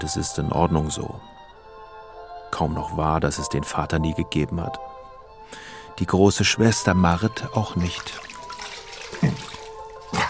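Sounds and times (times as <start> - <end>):
speech: 0.0 - 1.4, 2.6 - 4.9, 5.5 - 8.3
cold tap water running: 7.6 - 10.2.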